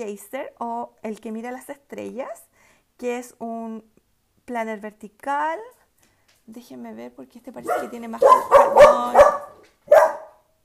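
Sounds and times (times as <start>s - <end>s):
speech: 0.0s - 5.8s, 6.5s - 9.4s
dogs barking outside a house: 7.6s - 10.4s.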